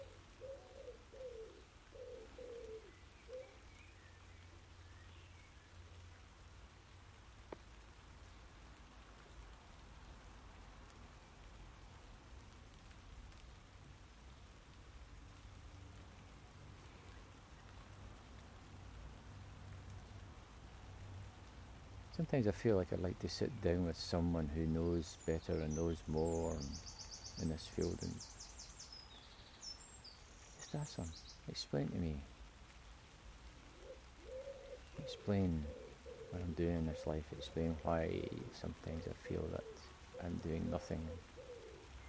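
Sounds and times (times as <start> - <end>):
dove cooing: 0.0 - 3.8, 33.6 - 42.0
steady rain pattering: 0.0 - 42.0
speech: 22.2 - 28.4, 30.7 - 32.3, 35.1 - 41.3.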